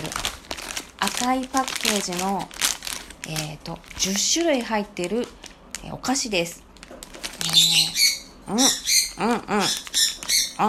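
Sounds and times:
speech: 1.1s - 2.6s, 3.2s - 6.6s, 7.4s - 10.6s
peach-faced lovebird chirping: 7.4s - 10.6s
peach-faced lovebird squawk: 7.4s - 10.6s.

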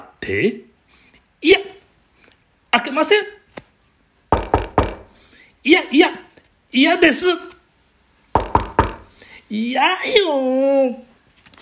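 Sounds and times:
speech: 0.2s - 0.7s, 1.4s - 1.8s, 2.8s - 3.4s, 5.6s - 7.5s, 9.5s - 11.1s
sharp loud knocks on a wooden door: 4.3s - 5.2s, 8.4s - 9.1s.

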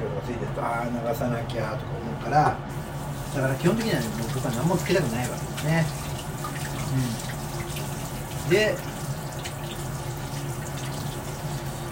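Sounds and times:
speech: 0.6s - 6.1s, 6.9s - 7.3s, 8.5s - 8.9s
tap water running into a sink: 2.7s - 11.8s
man murmuring: 6.9s - 7.3s.

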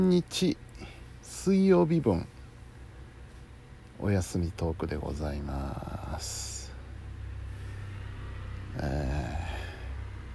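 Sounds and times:
speech: 0.0s - 0.6s, 1.4s - 2.3s, 4.0s - 6.5s, 8.8s - 9.3s
small newspaper delivery motorbike driving past: 7.1s - 10.3s.

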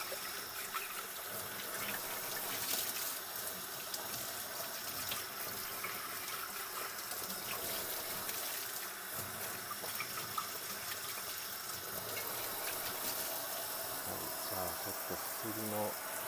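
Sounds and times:
cold water running from a kitchen tap into a sink while washing dishes: 0.0s - 16.2s.

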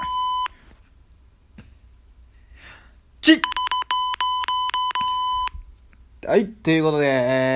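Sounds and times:
high-pitched censorship bleep tone over a spoken dirty joke: 0.0s - 0.5s, 3.4s - 5.6s
faint breaths: 1.6s - 3.1s
speech: 3.2s - 3.6s, 6.3s - 7.5s.

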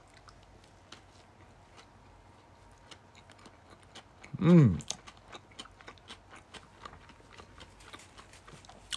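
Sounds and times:
person chewing a ham sandwich with a mayonnaise-like dressing: 0.0s - 8.9s
speech: 4.4s - 4.9s.

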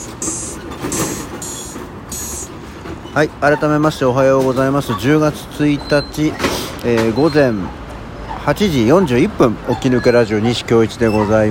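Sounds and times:
bright hissing squeals: 0.0s - 3.8s, 4.5s - 11.5s
dense traffic rumbling in Namba Osaka Japan: 0.0s - 11.5s
speech: 3.2s - 7.8s, 8.4s - 11.5s.

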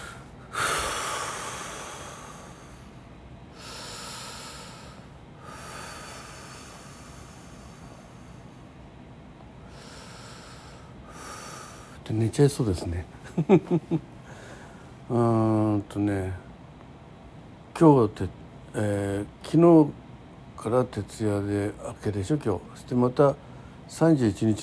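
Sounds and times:
deep slow breathing before a wrist blood pressure monitor reading: 0.0s - 8.8s, 9.6s - 12.0s, 14.2s - 15.1s
speech: 12.1s - 14.1s, 15.1s - 16.4s, 17.8s - 20.0s, 20.6s - 24.6s
laughter: 13.2s - 14.0s.

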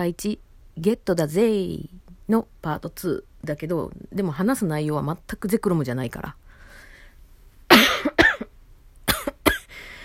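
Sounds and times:
speech: 0.0s - 6.4s
person coughing from allergy: 7.7s - 8.5s, 9.1s - 9.7s.

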